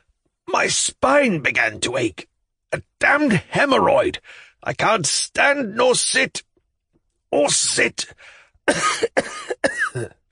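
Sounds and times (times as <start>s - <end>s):
speech: 0.5s - 6.5s, 7.3s - 10.2s
old man coughing: 8.7s - 10.2s.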